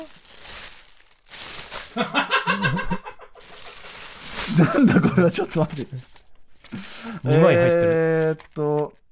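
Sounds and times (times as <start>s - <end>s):
black plastic bag crinkling as a Yu-Pack parcel is opened: 0.0s - 6.8s
speech: 2.0s - 2.2s, 4.6s - 6.2s, 7.2s - 8.9s
laughter: 2.0s - 3.8s, 4.4s - 5.7s, 7.2s - 8.2s.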